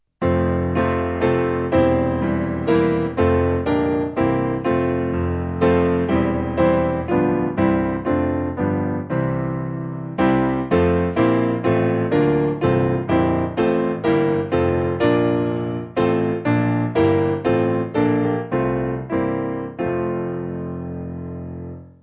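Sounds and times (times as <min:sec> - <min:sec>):
backing piano: 0:00.2 - 0:22.0.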